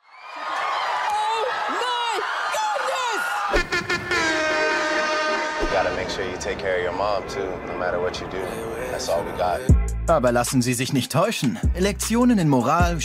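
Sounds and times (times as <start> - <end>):
studio audience of housewives screaming with joy: 0.2 - 5.2
speech: 5.8 - 13.0.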